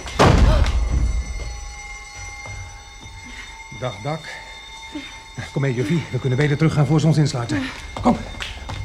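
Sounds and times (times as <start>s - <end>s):
heavy steel door slamming shut near a building's roof: 0.2s - 1.3s
speech: 3.8s - 8.4s.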